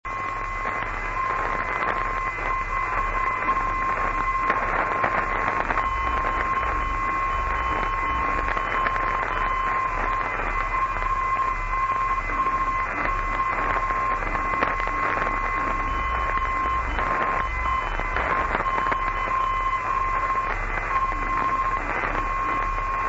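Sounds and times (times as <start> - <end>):
non-directional radio beacon signal on 412 kHz: 0.1 - 23.0.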